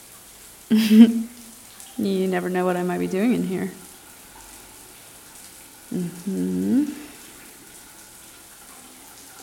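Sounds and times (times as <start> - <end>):
running shower water spraying: 0.0 - 9.4
person making a brief voiced sound: 0.7 - 1.3, 5.9 - 7.2
speech: 0.7 - 1.3, 2.0 - 3.8, 5.9 - 7.1.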